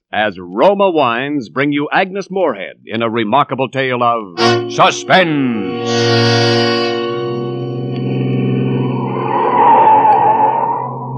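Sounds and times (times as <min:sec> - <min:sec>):
speech: 0:00.1 - 0:06.6
car engine speeding up a steep tortuous mountain road: 0:05.8 - 0:11.1
car tires skidding on a steep mountain road: 0:08.8 - 0:11.1.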